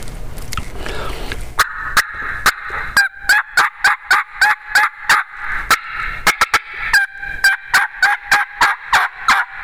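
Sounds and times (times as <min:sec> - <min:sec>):
turkey call yelping with cut notes: 0:01.6 - 0:09.6.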